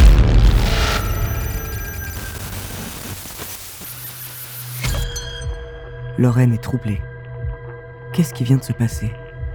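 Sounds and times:
phone static crackling and buzzing with whining tones: 0:00.0 - 0:04.9
speech: 0:06.2 - 0:07.1, 0:08.2 - 0:09.2.

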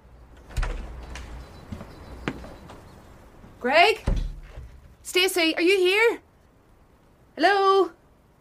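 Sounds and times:
unlocked door opening: 0:00.3 - 0:02.9, 0:04.0 - 0:05.0
speech: 0:03.6 - 0:04.1, 0:05.1 - 0:06.2, 0:07.4 - 0:08.0.

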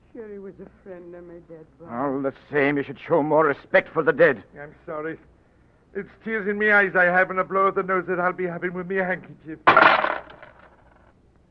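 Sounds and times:
speech: 0:00.2 - 0:05.4, 0:06.0 - 0:10.0
coins clattering on a hard floor: 0:09.7 - 0:11.1.

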